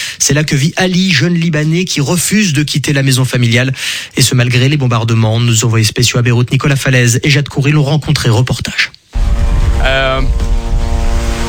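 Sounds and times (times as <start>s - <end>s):
speech: 0.2s - 10.5s
droning buzz: 9.2s - 11.4s.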